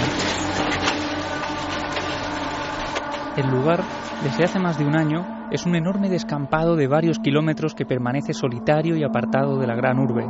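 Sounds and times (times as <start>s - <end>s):
material cracking and breaking apart during shack demolition: 0.0s - 3.4s
heavy excavator roaring while demolishing a shack in A Coruña, Spain: 0.0s - 7.6s
speech: 3.4s - 10.2s.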